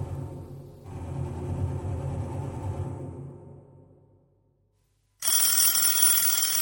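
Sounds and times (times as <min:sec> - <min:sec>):
low rumble: 0:00.0 - 0:04.6
loud shrill telephone bell ringing: 0:05.2 - 0:06.6.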